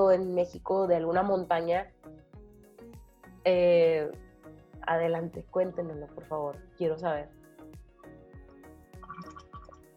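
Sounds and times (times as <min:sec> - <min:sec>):
speech: 0:00.0 - 0:02.0, 0:03.4 - 0:04.2, 0:04.8 - 0:07.4
person gulping and swallowing water: 0:09.0 - 0:09.9.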